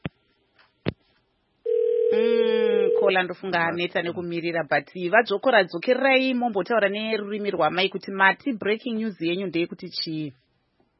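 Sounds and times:
steady continuous telephone line tone on a radio phone-in: 1.7s - 3.1s
speech: 3.1s - 10.4s.

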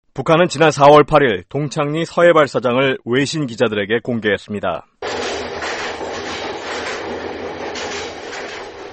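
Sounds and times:
speech: 0.2s - 4.9s
rhythmic clickety-clack of train on rails: 5.0s - 8.9s
train to the Sohae launch site at Dongchang-ri rolling along tracks: 5.0s - 8.9s.

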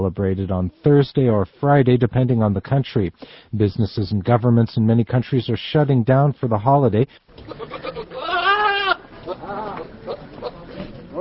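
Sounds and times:
speech: 0.0s - 7.9s
steady murmur of outdoor noise: 7.3s - 11.2s
goat bleating on a street in Islamabad Pakistan before Eid al-Adha: 7.4s - 11.2s.

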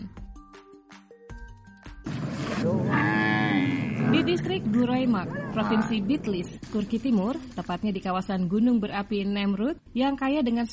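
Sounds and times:
water buffalo lowing: 2.6s - 4.5s
speech: 4.3s - 10.7s.

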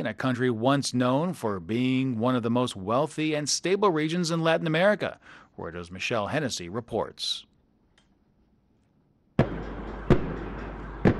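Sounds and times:
speech: 0.0s - 7.5s
tear gas shots fired by riot police at protesters in Santiago, Chile: 9.4s - 11.1s.

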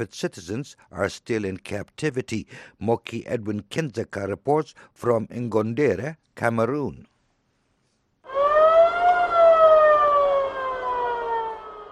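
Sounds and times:
speech: 0.0s - 7.1s
ambulance siren wailing and rushing past: 8.3s - 11.8s.

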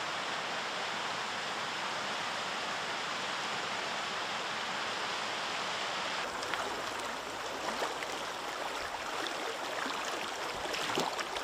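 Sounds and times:
rushing water in a mountain forest: 0.1s - 11.4s
quick water splashes and crackles: 6.2s - 11.4s.

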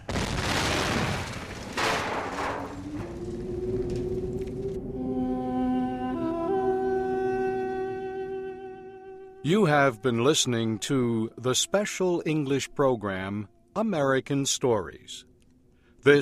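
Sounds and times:
explosions of a huge crashing airship: 0.0s - 4.7s
steady tonal drone: 2.8s - 9.4s
speech: 9.4s - 15.3s.

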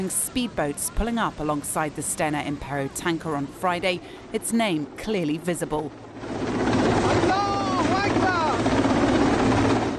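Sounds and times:
speech: 0.0s - 6.5s
helicopter hovering: 0.0s - 9.9s.

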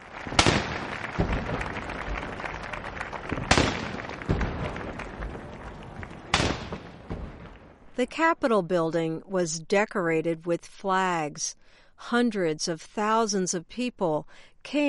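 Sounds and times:
steady outdoor rumble: 0.0s - 8.0s
cannon blasts with rolling echo: 0.2s - 7.9s
fainter reports: 0.3s - 1.8s, 3.3s - 4.8s, 6.3s - 7.6s
speech: 8.0s - 14.8s.

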